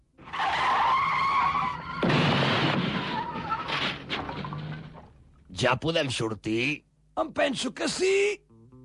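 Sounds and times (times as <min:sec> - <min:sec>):
car skidding to a stop with tires squealing: 0:00.3 - 0:04.8
speech: 0:05.6 - 0:08.4.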